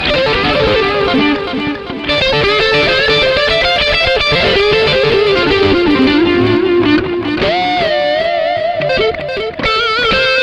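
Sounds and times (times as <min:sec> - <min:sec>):
guitar playing: 0:00.0 - 0:10.4.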